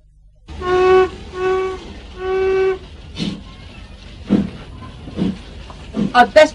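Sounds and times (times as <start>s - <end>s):
steam train whistle: 0.5s - 3.4s
steam train clanks: 0.5s - 6.5s
steam train hissing chuffs as the train gets underway: 0.5s - 6.5s.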